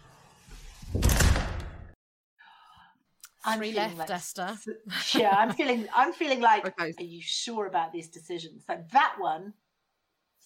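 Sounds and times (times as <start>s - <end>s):
door slamming shut: 0.8s - 2.0s
speech: 3.4s - 9.6s
laughter: 4.9s - 6.1s.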